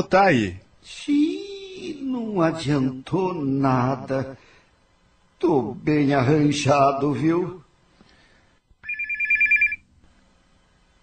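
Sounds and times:
speech: 0.0 - 1.2, 2.2 - 4.5, 5.4 - 7.6
telephone ringing with electronic warbling tone: 8.8 - 9.9.

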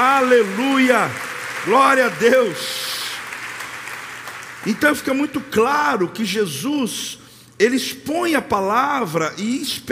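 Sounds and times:
speech: 0.0 - 3.0, 4.6 - 9.8
church audience applauding during a sermon: 0.0 - 5.0.

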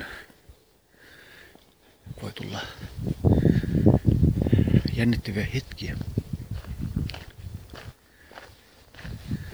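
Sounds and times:
shoes tramping on a thin layer of sand: 2.4 - 9.5
speech: 5.0 - 6.1.

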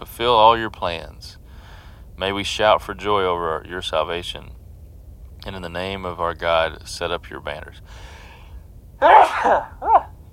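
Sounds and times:
speech: 0.2 - 1.4, 2.2 - 4.6, 5.4 - 8.1, 9.0 - 10.0
person reading scripture aloud sneezing: 9.0 - 10.1.

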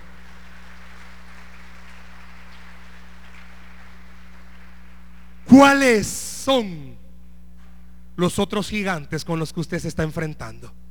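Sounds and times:
audience applauding: 0.0 - 6.0
low electrical hum: 0.0 - 10.9
speech: 5.5 - 6.9, 8.2 - 10.8.

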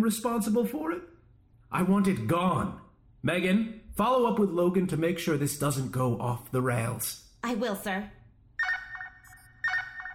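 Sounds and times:
speech: 0.0 - 1.1, 1.7 - 8.2
telephone ringing with bright warbling electronic ring: 8.6 - 10.1.

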